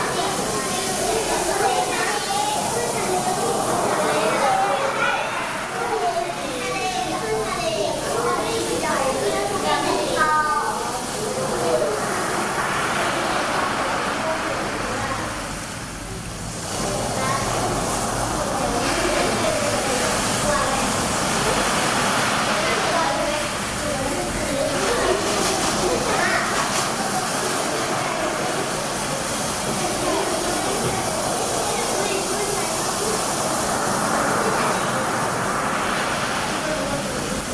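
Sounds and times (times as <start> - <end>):
sea waves crashing: 0.0 - 37.5.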